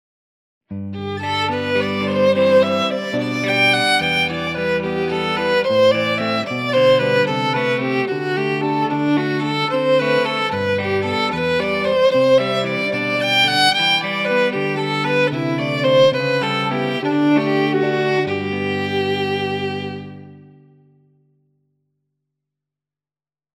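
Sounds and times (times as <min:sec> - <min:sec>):
guitar playing wedding music: 0:00.7 - 0:21.4.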